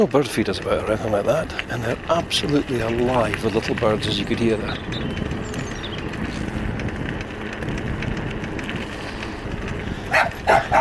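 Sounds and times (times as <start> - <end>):
speech: 0.0 - 5.6
steady rumbling noise during a bike ride on the Buchan Plain: 0.0 - 10.7
dog barking: 10.1 - 10.7.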